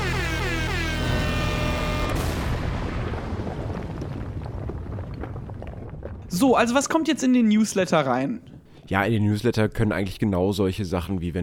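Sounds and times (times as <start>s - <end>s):
sustained rising synth tones in a podcast jingle: 0.0s - 2.7s
loud explosive boom in a podcast jingle: 0.0s - 6.3s
speech: 6.3s - 11.4s.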